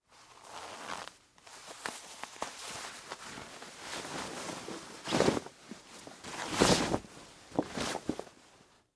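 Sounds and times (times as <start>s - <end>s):
jeans being taken off: 1.8s - 8.4s.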